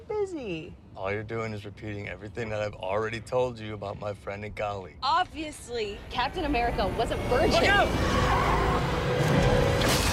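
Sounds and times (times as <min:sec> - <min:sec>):
speech: 0:00.2 - 0:09.6
car tires skidding in an accident: 0:07.3 - 0:09.8.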